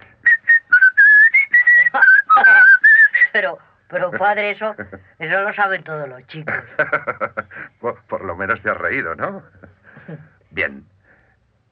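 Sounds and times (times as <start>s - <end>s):
person whistling a short lively tune: 0.2s - 3.3s
laughter: 1.7s - 2.8s, 4.1s - 5.1s, 6.4s - 8.0s
speech: 3.5s - 10.9s.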